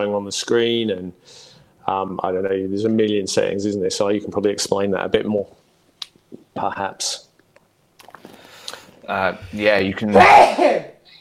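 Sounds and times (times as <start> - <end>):
speech: 0.0 - 5.6, 6.6 - 7.3, 9.1 - 10.9
loud sneeze: 10.1 - 11.0.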